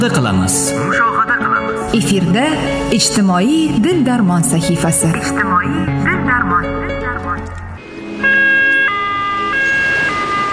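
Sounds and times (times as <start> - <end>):
speech: 0.0 - 1.3, 1.9 - 7.3
ambulance siren wailing in two-tone steps: 7.8 - 10.5.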